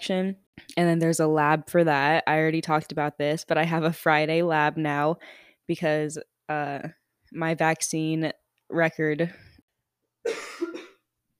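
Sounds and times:
speech: 0.0s - 9.5s
harsh cough: 10.3s - 11.1s.

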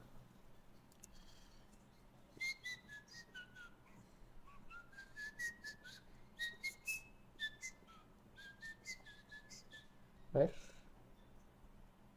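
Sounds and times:
low hum: 0.0s - 12.1s
person whistling a lively video game tune: 2.3s - 10.0s
speech: 10.4s - 10.6s.

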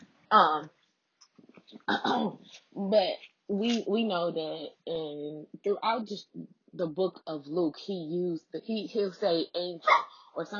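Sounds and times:
speech: 0.3s - 0.8s, 1.7s - 10.5s
pet dog giving a short sharp bark: 9.9s - 10.2s.

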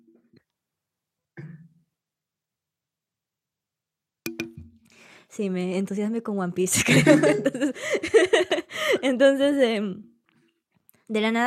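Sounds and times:
person coughing: 1.4s - 1.8s
speech: 5.3s - 10.1s, 11.1s - 11.4s
laughter: 6.8s - 8.8s.

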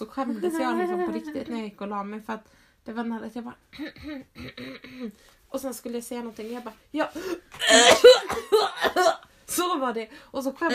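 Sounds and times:
speech: 0.1s - 10.7s
laughter: 0.3s - 1.6s
person coughing harshly and throatily: 3.8s - 5.1s, 7.6s - 9.2s.

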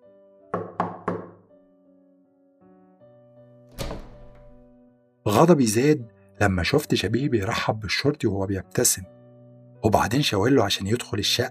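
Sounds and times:
knocking on a wooden apartment door: 0.5s - 1.4s, 3.8s - 4.7s
speech: 5.3s - 9.2s, 9.8s - 11.4s.

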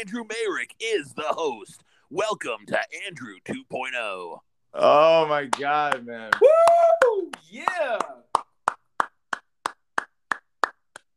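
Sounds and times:
speech: 0.0s - 8.2s
single person clapping hands: 5.5s - 11.1s.

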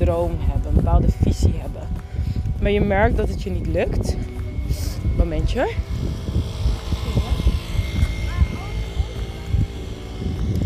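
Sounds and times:
speech: 0.0s - 6.2s
small scooter motor engine droning past: 3.6s - 10.6s.

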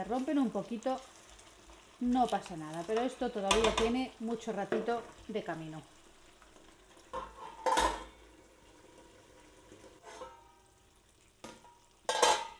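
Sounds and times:
speech: 0.0s - 1.2s, 2.0s - 5.9s
potatoes sizzling in a wok: 0.0s - 12.5s
metallic scraping while stirring potatoes in a wok: 7.1s - 8.3s, 9.4s - 10.7s, 12.1s - 12.5s.

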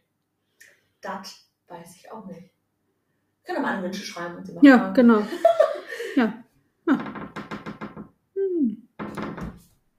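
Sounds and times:
speech: 1.0s - 2.6s, 3.4s - 7.1s
sharp knocking on a door: 7.0s - 8.1s.

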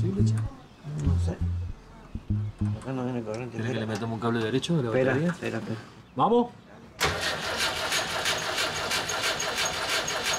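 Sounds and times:
speech: 0.0s - 1.6s, 2.2s - 6.6s
carburetor engine primed through the carburetor starting and running: 7.0s - 10.3s.

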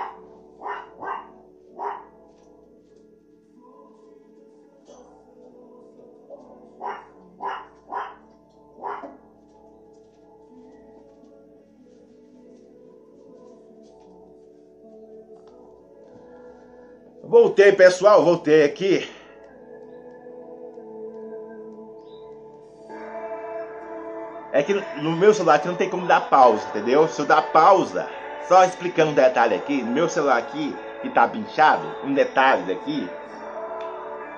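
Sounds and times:
dogs barking at a house: 0.0s - 2.2s, 6.3s - 9.3s
speech: 17.3s - 19.1s, 24.6s - 33.2s.

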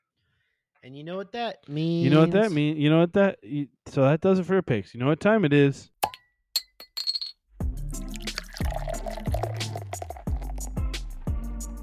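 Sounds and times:
speech: 0.8s - 5.9s
glasses clinking: 6.0s - 7.3s, 8.0s - 10.7s.

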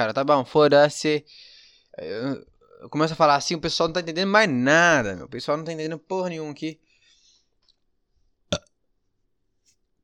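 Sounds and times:
speech: 0.0s - 6.9s
short loud burp: 8.5s - 8.8s.

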